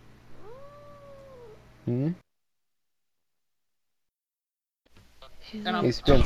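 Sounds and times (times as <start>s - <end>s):
unhappy fat female cat yowling while being held: 0.4s - 1.6s
speech: 1.9s - 2.2s, 5.5s - 6.2s.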